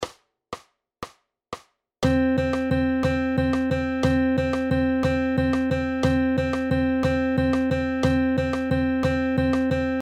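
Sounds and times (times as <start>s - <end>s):
quarter-note triplets: 2.0s - 10.0s.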